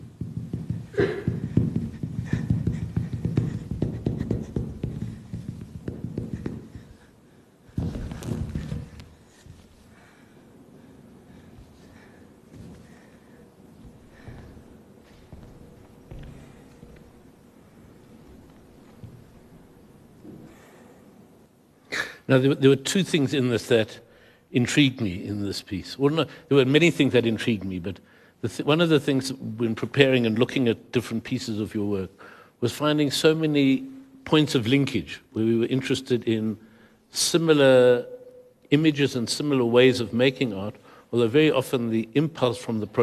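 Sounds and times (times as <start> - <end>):
dancers' bare feet stamping: 0.0 - 9.8, 13.8 - 17.2
dancers' bare feet stepping on floor: 0.0 - 9.8, 11.5 - 13.1, 13.8 - 17.2
speech: 1.0 - 1.4, 22.3 - 43.0.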